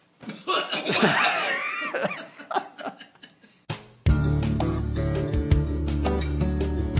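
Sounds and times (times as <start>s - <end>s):
crowd of people coughing together: 0.4s - 3.5s
people laughing: 0.8s - 3.5s
loud music: 3.7s - 6.9s.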